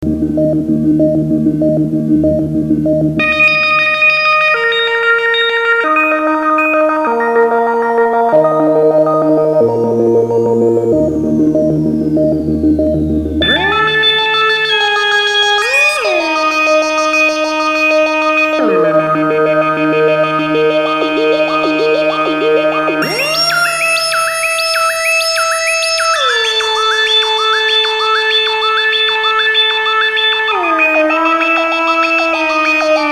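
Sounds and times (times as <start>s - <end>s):
VCO synthesizer oscillator tone: 0.0s - 33.1s.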